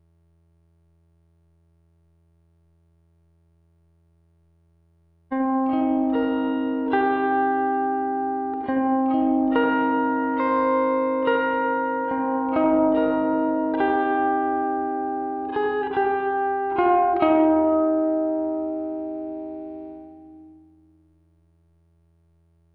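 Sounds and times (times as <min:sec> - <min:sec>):
guitar texture: 0:05.4 - 0:20.7.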